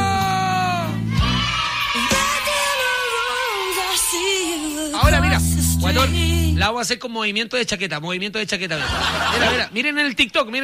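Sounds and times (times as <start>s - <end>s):
loud sustained shrill scream: 0.0s - 5.0s
speech: 6.0s - 10.6s
laughter: 8.7s - 9.8s.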